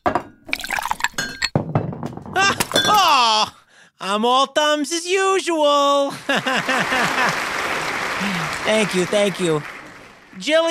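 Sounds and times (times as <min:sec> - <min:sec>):
glass tumbler clinking and knocking: 0:00.0 - 0:03.1
amber liquid poured and splashing into a tumbler: 0:00.5 - 0:01.2
speech: 0:04.2 - 0:07.5, 0:08.2 - 0:09.7, 0:10.4 - 0:10.6
laughter: 0:06.1 - 0:09.8.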